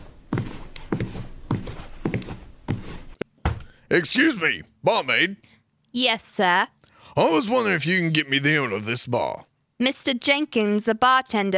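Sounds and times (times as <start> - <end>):
heavy footsteps on a hard floor walking into a bar: 0.0 - 3.8
faint room hum: 0.0 - 11.5
speech: 3.9 - 11.5.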